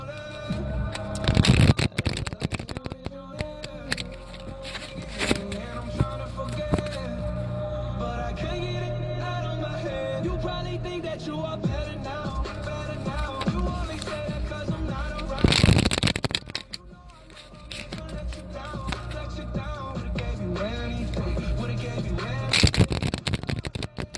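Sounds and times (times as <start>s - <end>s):
music: 0.0s - 24.1s
deck of cards being riffle-shuffled: 0.2s - 7.1s, 12.6s - 14.3s, 15.1s - 19.3s, 22.4s - 24.1s.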